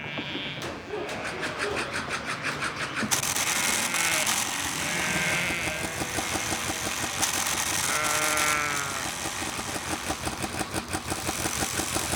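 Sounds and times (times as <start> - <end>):
sheep bleating in Tierra del Fuego: 0.0 - 1.2, 3.7 - 9.4
steady engine noise: 1.2 - 12.1.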